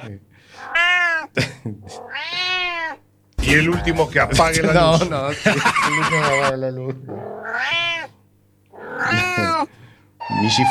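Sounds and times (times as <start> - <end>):
speech: 0.0 - 0.8, 1.4 - 2.3, 3.4 - 7.8, 9.1 - 10.6
cat meowing: 0.6 - 1.3, 2.0 - 3.0, 7.3 - 10.6
laughter: 3.6 - 6.6.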